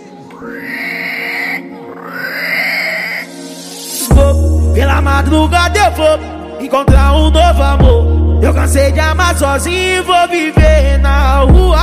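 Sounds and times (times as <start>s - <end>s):
speech: 0.4s - 0.8s, 5.0s - 11.8s
wild boar grunting and squealing: 0.4s - 3.3s.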